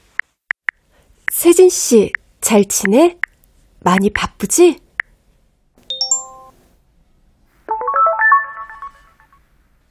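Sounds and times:
speech: 1.5s - 3.2s, 3.8s - 4.8s
mobile phone text message notification chime: 5.9s - 6.6s, 7.7s - 9.3s.

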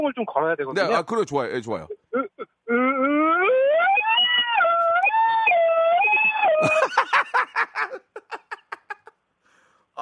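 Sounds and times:
speech: 0.0s - 2.0s
person vocally imitating an ambulance siren: 2.1s - 6.8s
laughter: 6.6s - 9.1s.

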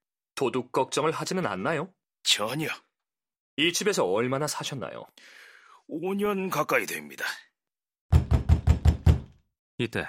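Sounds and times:
speech: 0.4s - 2.8s, 3.6s - 7.5s, 9.8s - 10.0s
rapid heavy knocking on a door: 8.1s - 9.4s.

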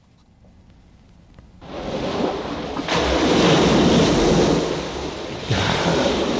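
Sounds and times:
ocean waves crashing: 1.6s - 6.3s.

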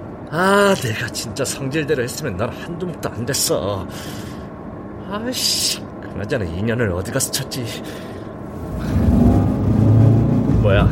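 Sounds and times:
faint mechanical whir: 0.0s - 10.8s
speech: 0.3s - 4.4s, 5.1s - 8.1s, 10.7s - 10.8s
car engine rumbling and revving: 8.5s - 10.8s.

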